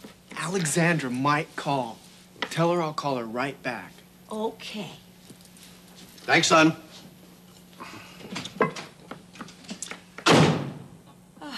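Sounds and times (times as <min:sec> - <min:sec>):
speech: 0:00.4 - 0:05.0, 0:06.3 - 0:06.8
door slamming: 0:10.2 - 0:10.9.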